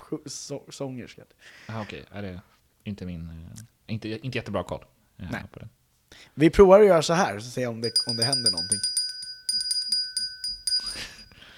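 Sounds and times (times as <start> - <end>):
speech: 0.1 - 8.9
small metallic hand bell ringing: 7.8 - 11.5.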